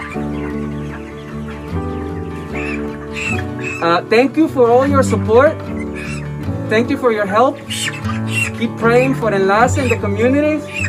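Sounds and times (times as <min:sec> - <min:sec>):
chicken clucking and squawking: 0:00.0 - 0:04.2, 0:05.6 - 0:06.4, 0:07.2 - 0:10.8
speech: 0:03.8 - 0:05.8, 0:06.7 - 0:10.8.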